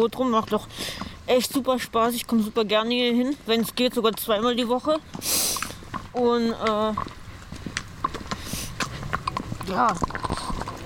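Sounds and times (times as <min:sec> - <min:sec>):
speech: 0:00.0 - 0:07.2, 0:09.7 - 0:10.6
horse hooves clip-clopping on a hard surface at a walking pace: 0:00.0 - 0:10.8.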